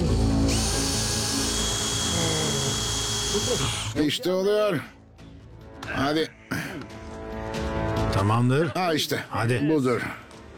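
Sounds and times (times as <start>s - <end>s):
power drill drilling into old metal safe: 0.2s - 4.0s
speech: 3.5s - 5.0s, 6.0s - 6.4s, 8.2s - 10.2s.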